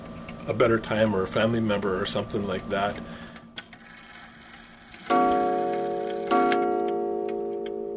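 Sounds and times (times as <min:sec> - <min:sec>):
speech: 0:00.5 - 0:03.3
mechanical clocks ticking in repair shop: 0:03.8 - 0:07.0
loud resonant clock chime strikes: 0:05.1 - 0:07.9.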